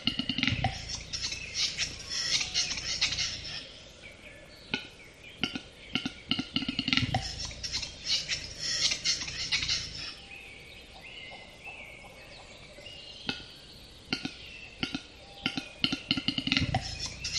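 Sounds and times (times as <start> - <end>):
western capercaillie displaying: 0.0 - 3.7, 6.4 - 10.2, 15.0 - 17.3.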